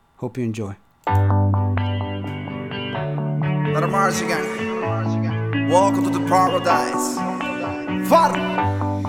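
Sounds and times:
speech: 0.2 - 1.8, 3.8 - 5.1, 5.7 - 7.3, 8.0 - 8.8
Latin pop song with echo and reverb: 3.6 - 9.0
sung vocal line processed with echo and reverb: 3.7 - 9.0.

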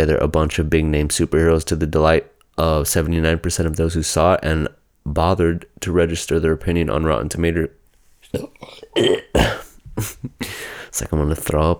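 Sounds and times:
speech: 0.0 - 11.7
person burping: 8.3 - 10.7.

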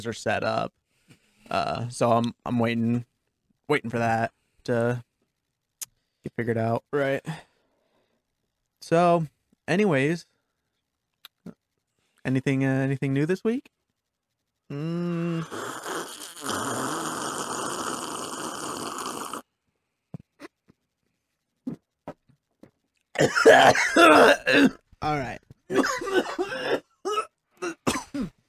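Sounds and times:
speech: 0.0 - 0.8, 1.5 - 3.1, 3.7 - 5.1, 6.2 - 7.5, 8.8 - 10.3, 12.2 - 13.7, 14.7 - 15.8, 23.2 - 26.8
long drawn-out sucking noise: 14.7 - 19.5
harsh coughing: 23.2 - 24.8, 25.7 - 28.4.

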